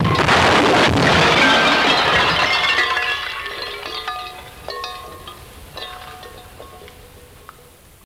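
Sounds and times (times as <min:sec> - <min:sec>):
metallic car crash: 0:00.0 - 0:06.4.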